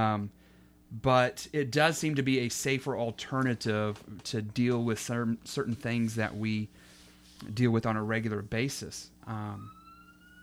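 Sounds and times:
speech: 0.0 - 9.8
police siren passing outside: 9.3 - 10.4.

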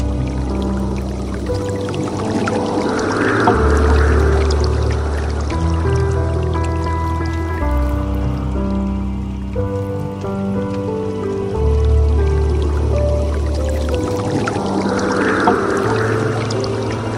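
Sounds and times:
gentle water stream trickling: 0.0 - 17.1
soft piano chords over a deep bass note: 0.0 - 17.1.

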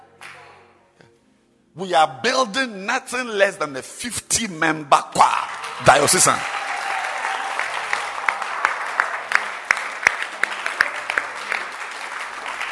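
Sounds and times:
speech: 1.8 - 6.6
audience applause at a diocesan gathering: 5.4 - 12.6.

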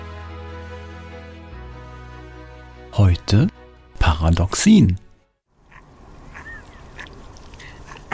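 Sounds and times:
speech: 3.0 - 3.6, 4.2 - 5.0
steady outdoor hiss: 3.2 - 8.1
ducks quacking: 5.6 - 8.1.

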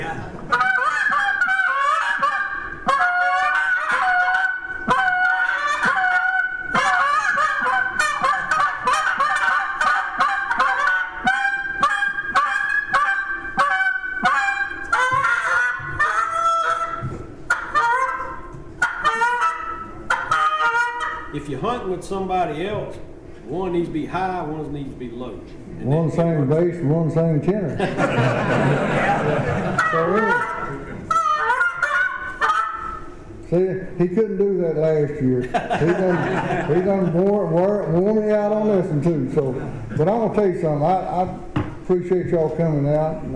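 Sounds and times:
goose call imitating a flock of geese: 0.5 - 21.9, 29.3 - 33.2
speech: 22.0 - 30.5, 33.5 - 43.3
laughter: 27.7 - 31.1, 35.3 - 37.4.

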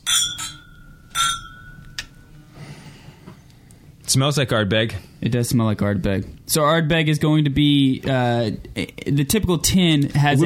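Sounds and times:
glasses clinking together in a toast: 0.0 - 2.4
speech: 4.1 - 10.4.

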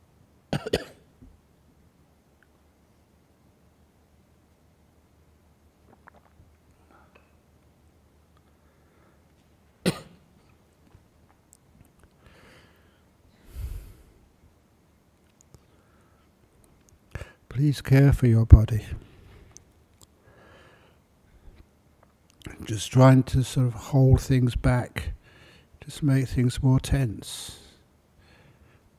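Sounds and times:
low hum: 0.0 - 28.9
person clearing an itchy throat with short coughs: 0.5 - 1.1, 9.8 - 10.2
speech: 0.6 - 0.8, 17.6 - 19.1, 22.7 - 25.2, 25.8 - 27.6
person sipping water: 5.8 - 7.4.

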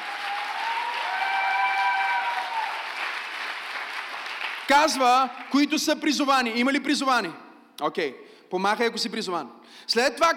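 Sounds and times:
audience applauding: 0.0 - 5.6
speech: 4.7 - 10.3.

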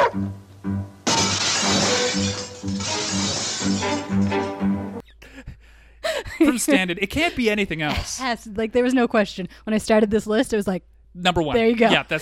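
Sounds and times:
low pulsing musical beat: 0.0 - 1.0
speech: 0.2 - 1.0, 6.6 - 12.2
dog crashing through a glass window: 1.0 - 4.7
shattering, tinkling glass: 1.1 - 4.5.

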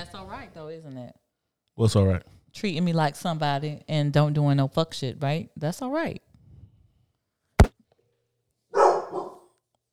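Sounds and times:
speech: 0.4 - 1.2, 1.8 - 6.3
blonde dog barking: 8.7 - 9.5.

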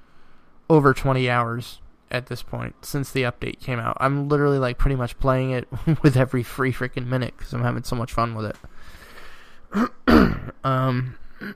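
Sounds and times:
speech: 0.7 - 9.0, 9.7 - 11.5
loud rough throat clearing: 9.7 - 11.5.

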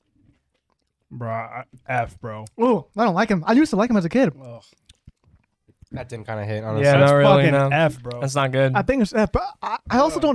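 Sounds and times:
crisp snack being bitten and chewed: 0.0 - 1.1
speech: 1.1 - 4.8, 5.9 - 10.3.

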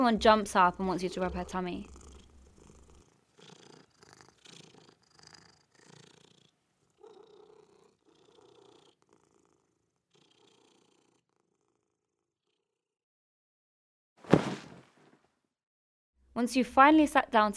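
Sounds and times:
speech: 0.0 - 2.0, 16.4 - 17.5
cat purring while being stroked: 0.6 - 12.8.

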